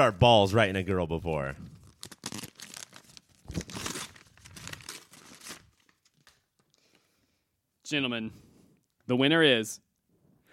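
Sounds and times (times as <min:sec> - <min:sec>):
speech: 0:00.0 - 0:01.7, 0:07.9 - 0:08.4, 0:09.1 - 0:09.8
paper envelope being torn open: 0:01.8 - 0:06.4.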